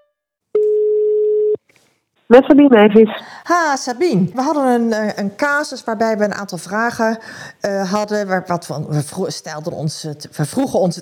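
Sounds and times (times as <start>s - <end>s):
telephone call tone while dialing: 0.6s - 1.6s
speech: 2.3s - 11.0s.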